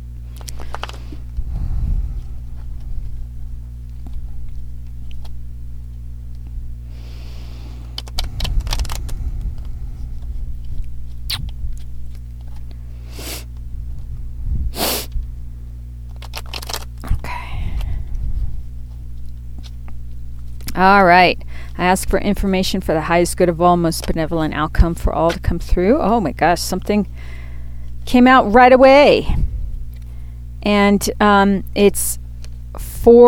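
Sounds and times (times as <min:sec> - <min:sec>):
steady low electrical hum: 0:00.0 - 0:33.2
tarot cards being shuffled: 0:00.3 - 0:01.4, 0:02.5 - 0:06.4, 0:07.7 - 0:14.1, 0:16.0 - 0:17.2
speech: 0:20.8 - 0:27.4, 0:28.0 - 0:29.4, 0:30.6 - 0:32.2, 0:33.0 - 0:33.2.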